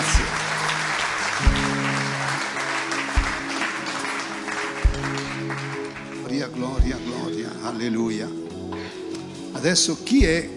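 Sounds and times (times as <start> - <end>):
audience applauding: 0.0 - 7.1
sustained keyboard chords: 0.0 - 10.5
deep thumps: 3.2 - 3.6, 4.8 - 5.3, 6.8 - 7.1, 10.2 - 10.5
speech: 7.8 - 8.4, 9.6 - 10.5.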